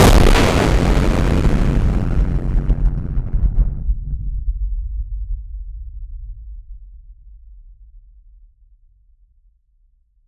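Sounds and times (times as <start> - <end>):
thermonuclear explosion: 0.0 - 4.4.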